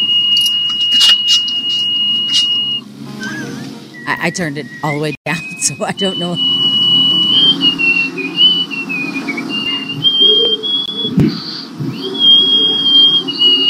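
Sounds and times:
person whistling loudly through the nose: 0:00.0 - 0:03.6, 0:06.4 - 0:13.6
speech: 0:04.1 - 0:06.8
low rumbling background: 0:05.8 - 0:12.0.

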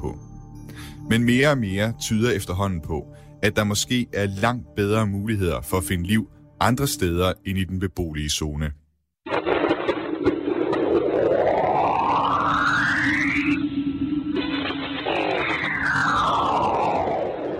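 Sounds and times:
speech: 0:00.0 - 0:08.8
long rising tonal sweeps: 0:09.7 - 0:17.5
sonified magnetic field data from Saturn's moon, hissing whooshing noise: 0:11.3 - 0:17.5.

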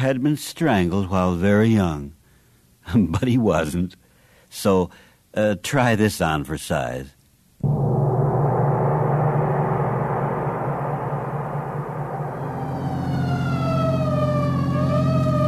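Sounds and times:
speech: 0:00.0 - 0:02.2, 0:02.9 - 0:07.7
heavy rumbling engine roar: 0:07.6 - 0:15.4
emergency vehicle siren wailing: 0:11.8 - 0:15.4.

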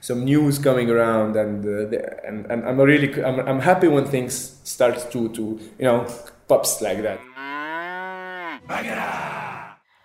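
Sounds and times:
speech: 0:00.0 - 0:07.3, 0:08.7 - 0:09.4
cow mooing: 0:07.0 - 0:09.8.

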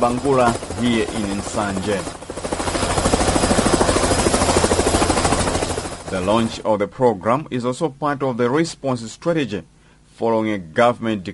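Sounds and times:
speech: 0:00.0 - 0:02.2, 0:06.1 - 0:11.3
helicopter ferrying people out of flood-prone areas around Bangula in Nsanje: 0:00.0 - 0:06.7.

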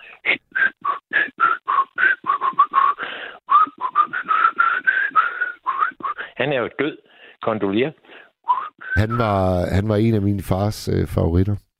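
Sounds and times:
person whistling a lively fast melody: 0:00.5 - 0:06.2, 0:08.5 - 0:09.3
speech: 0:06.4 - 0:08.0, 0:09.0 - 0:11.6.

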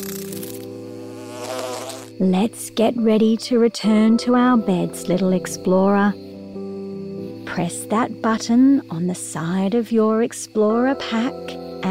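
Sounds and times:
bee buzzing: 0:00.0 - 0:03.4
speech: 0:02.2 - 0:06.2, 0:07.6 - 0:11.9.

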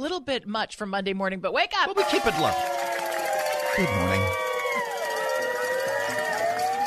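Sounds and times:
speech: 0:00.0 - 0:02.9, 0:03.8 - 0:04.4
police sirens wailing: 0:02.0 - 0:06.8
murmur and chatter of a busy protest crowd: 0:03.3 - 0:06.8.

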